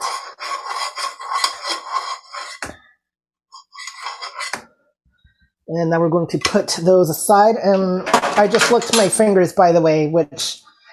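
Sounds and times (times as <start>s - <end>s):
spoon scraping chocolate out of a bowl: 0.0s - 2.9s, 3.5s - 4.7s
speech: 5.7s - 10.6s.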